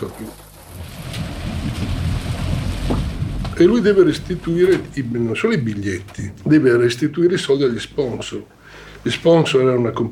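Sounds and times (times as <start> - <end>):
speech: 0.0 - 2.0, 3.6 - 10.1
rain falling in a thunderstorm: 0.0 - 6.6
thunder rumbling: 0.5 - 6.5.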